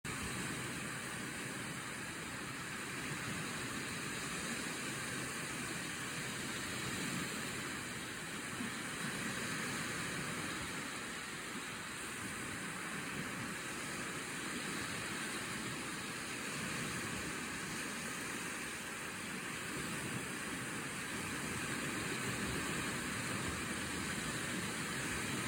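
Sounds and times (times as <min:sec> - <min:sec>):
ocean: 0:00.0 - 0:25.4.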